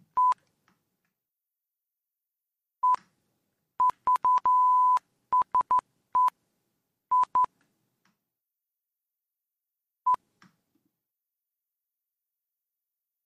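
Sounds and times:
telephone line beeps and dialing tones: 0:03.8 - 0:06.3, 0:07.1 - 0:07.5.

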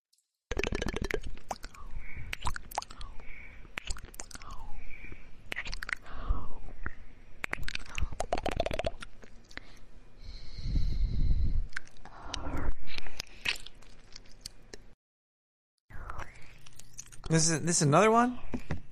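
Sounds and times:
mouth chewing and sucking against a microphone: 0:00.5 - 0:04.8, 0:05.5 - 0:09.8, 0:11.7 - 0:14.8, 0:16.0 - 0:17.3
speech: 0:17.3 - 0:18.7.

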